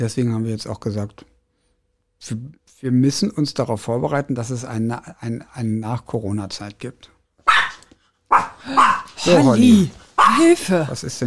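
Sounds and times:
speech: 0:00.0 - 0:01.3, 0:02.2 - 0:07.7, 0:09.2 - 0:11.2
dog barking: 0:07.4 - 0:09.6, 0:10.2 - 0:10.6.

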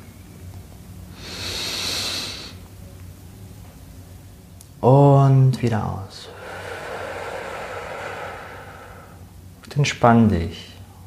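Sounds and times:
quiet hum: 0:00.0 - 0:11.0
long deep breath drawn in through the nose: 0:01.2 - 0:02.6, 0:06.3 - 0:09.2
speech: 0:04.8 - 0:05.0, 0:05.6 - 0:06.4, 0:09.8 - 0:10.7.

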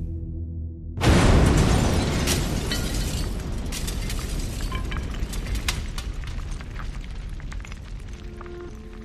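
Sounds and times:
loud dull bomb explosion in a waste bin: 0:01.0 - 0:04.0
debris rattling: 0:01.0 - 0:08.2.

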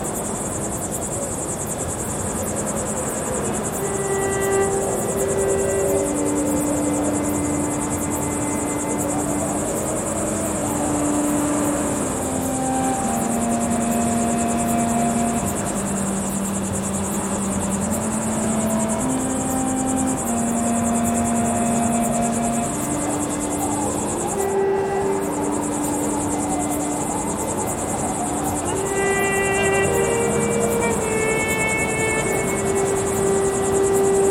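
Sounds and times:
slow melody of long held notes: 0:00.0 - 0:34.2
steady dense rushing noise in the Atlas Mountains: 0:00.0 - 0:34.2.

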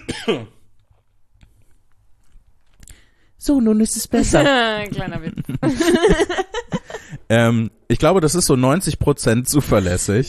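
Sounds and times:
person clearing throat: 0:00.0 - 0:00.6
speech: 0:00.2 - 0:00.6, 0:03.4 - 0:06.7, 0:07.3 - 0:10.2
laughter: 0:04.9 - 0:07.2.

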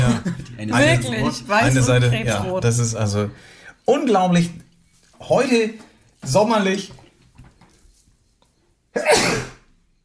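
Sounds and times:
laughter: 0:00.0 - 0:01.2
speech: 0:00.2 - 0:04.6, 0:05.2 - 0:07.0, 0:09.0 - 0:09.5
loud sneeze: 0:09.0 - 0:09.7.

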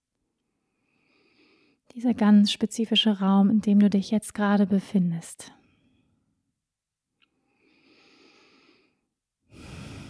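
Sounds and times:
slow breathing in and out during a guided meditation: 0:00.7 - 0:01.8, 0:07.5 - 0:10.0
speech: 0:02.0 - 0:05.6.

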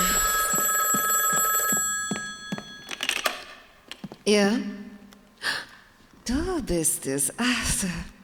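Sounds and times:
telephone bell ringing: 0:00.0 - 0:03.4
speech: 0:04.3 - 0:04.7, 0:06.3 - 0:08.2.

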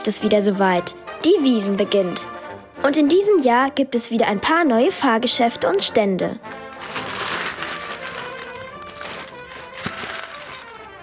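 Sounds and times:
speech: 0:00.0 - 0:06.7
crinkly plastic bag rustling: 0:06.6 - 0:11.0
scoop of hard candies pouring into a bag: 0:06.6 - 0:11.0.

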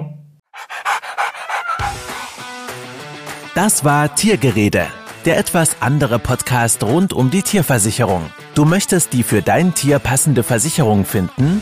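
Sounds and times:
dog panting: 0:00.6 - 0:02.5
speech: 0:03.6 - 0:11.6.

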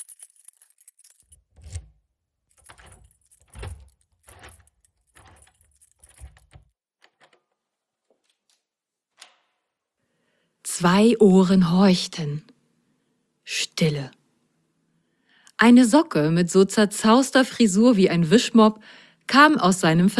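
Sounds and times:
keys jingling: 0:00.0 - 0:06.7
key turning in a lock with metallic rattles and clunks: 0:00.0 - 0:07.6
speech: 0:10.8 - 0:12.5, 0:13.8 - 0:14.2, 0:15.6 - 0:20.1.

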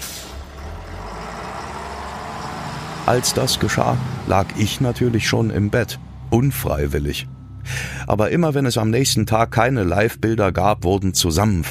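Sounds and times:
bus air brakes hissing: 0:00.0 - 0:00.5
bus engine rumbling at night: 0:00.0 - 0:10.8
speech: 0:03.1 - 0:11.7.

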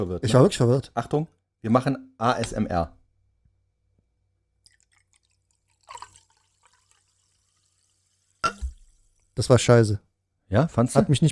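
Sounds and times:
speech: 0:00.0 - 0:03.0, 0:09.4 - 0:11.3
faint drips: 0:04.6 - 0:09.4
fizzy drink pouring into a glass: 0:04.7 - 0:09.4.

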